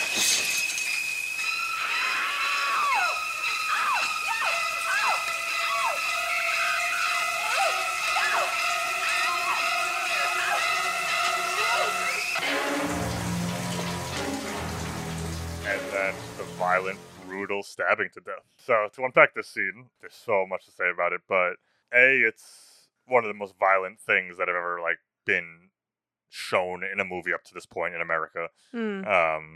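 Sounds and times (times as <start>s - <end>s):
running shower water: 0.0s - 17.4s
shrieking horror-film strings in sliding screeches: 0.0s - 17.5s
low murky tones: 1.5s - 17.8s
speech: 17.6s - 25.6s, 26.3s - 29.5s.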